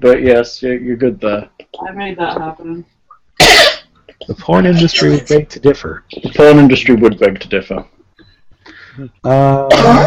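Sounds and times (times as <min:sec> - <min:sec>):
speech: 0:00.0 - 0:03.6, 0:04.2 - 0:07.9, 0:09.0 - 0:10.0
person coughing after soda went down the wrong way: 0:03.4 - 0:04.4, 0:09.6 - 0:10.0.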